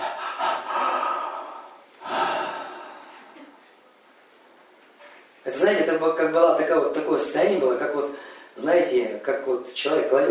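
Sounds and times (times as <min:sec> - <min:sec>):
person imitating a sharp held-breath gasp: 0:00.0 - 0:03.5
speech: 0:05.5 - 0:10.2.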